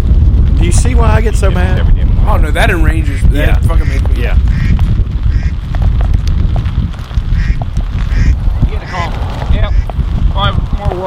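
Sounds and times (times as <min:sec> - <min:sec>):
constant rumbling outdoor noise: 0:00.0 - 0:11.0
speech: 0:00.7 - 0:04.9, 0:10.4 - 0:11.0
agitated ducks quacking harshly: 0:03.6 - 0:05.6, 0:07.3 - 0:10.0.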